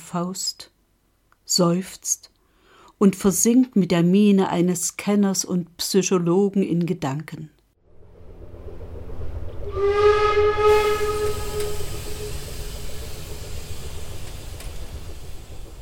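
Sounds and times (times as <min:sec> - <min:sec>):
speech: 0:00.1 - 0:00.7, 0:01.5 - 0:02.3, 0:03.0 - 0:07.6
low mechanical rumble of steam locomotive: 0:07.8 - 0:15.8
steam locomotive whistle: 0:09.5 - 0:15.3.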